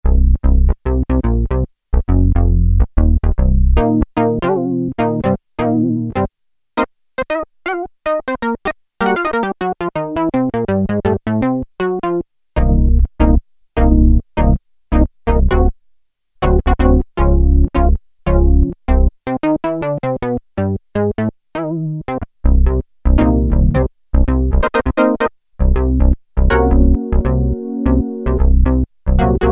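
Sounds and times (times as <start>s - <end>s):
funky Roland Juno-106 synthesizer factory preset: 0.1s - 6.3s, 7.2s - 15.8s, 16.4s - 29.5s.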